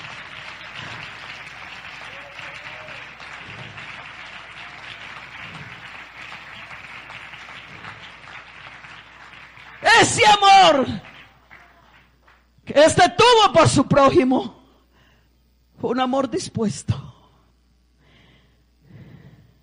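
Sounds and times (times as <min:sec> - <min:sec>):
large crowd applauding: 0:00.0 - 0:12.5
speech: 0:10.0 - 0:11.1, 0:12.8 - 0:14.6, 0:15.8 - 0:17.1.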